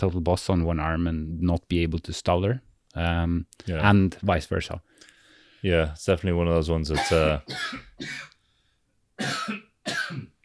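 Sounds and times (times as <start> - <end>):
speech: 0.0 - 8.3, 9.2 - 10.2
person coughing: 7.0 - 8.4, 9.2 - 10.4.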